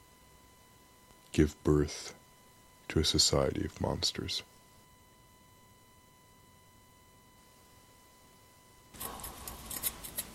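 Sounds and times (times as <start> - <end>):
speech: 1.4 - 2.2, 2.9 - 4.5
scissors snipping: 9.0 - 10.3.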